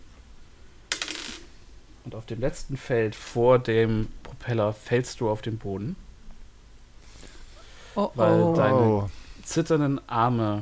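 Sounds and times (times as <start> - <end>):
small four-sided die clattering across a hard tabletop: 0.9 - 1.5
speech: 2.0 - 6.0, 8.0 - 10.5.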